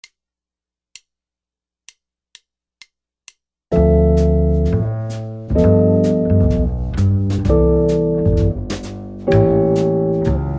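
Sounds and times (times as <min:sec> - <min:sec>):
jazz guitar comping: 0:03.8 - 0:10.5.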